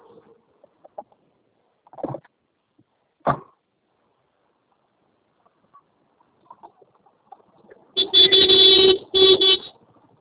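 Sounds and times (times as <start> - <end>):
car horn honking: 8.0 - 9.8.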